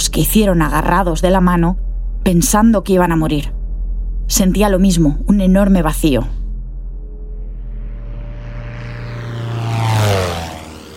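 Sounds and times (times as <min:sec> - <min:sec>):
propeller airplane droning overhead: 0:00.0 - 0:10.9
speech: 0:00.2 - 0:03.6, 0:04.3 - 0:06.4.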